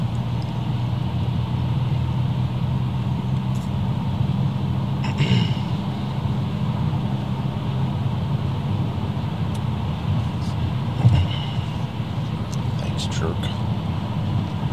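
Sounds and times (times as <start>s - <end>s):
road noise inside a car accelerating on a highway: 0.0s - 14.7s
car bumps on the road: 10.3s - 12.9s.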